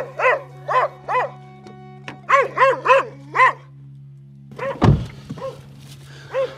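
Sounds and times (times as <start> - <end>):
dog barking at a door: 0.0 - 1.4, 2.3 - 3.7, 4.6 - 5.6, 6.3 - 6.5
sharp thump: 4.8 - 5.4.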